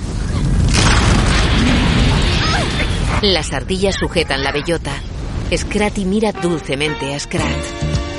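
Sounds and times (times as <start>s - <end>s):
volcanic eruption blasting rock fragments as the ground cracks open: 0.0s - 6.0s
speech: 3.2s - 8.0s.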